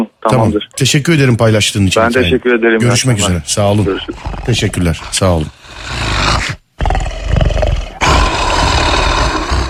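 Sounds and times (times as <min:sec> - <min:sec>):
speech: 0:00.2 - 0:06.6
big-cat roar sound effect: 0:04.1 - 0:09.6.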